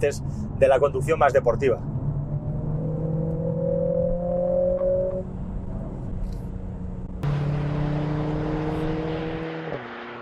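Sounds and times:
speech: 0.0 - 1.9
powerful SUV engine revving through adjustable sport exhaust: 1.8 - 10.1.

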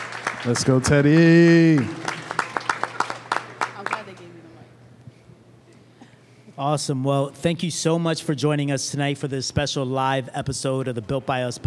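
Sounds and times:
small crowd clapping rhythmically: 0.0 - 4.4
quiet room hum: 0.0 - 11.6
speech: 0.4 - 2.1, 6.6 - 11.6.

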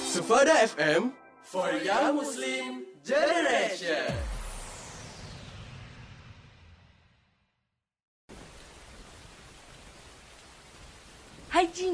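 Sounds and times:
speech: 0.3 - 4.3, 11.7 - 11.9
steady rain with a dense hissing patter: 8.3 - 11.9.

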